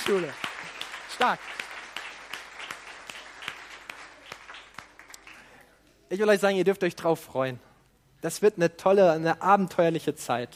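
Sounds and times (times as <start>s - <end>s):
small crowd clapping: 0.0s - 5.6s
speech: 0.1s - 0.4s, 1.2s - 1.6s, 6.1s - 10.5s.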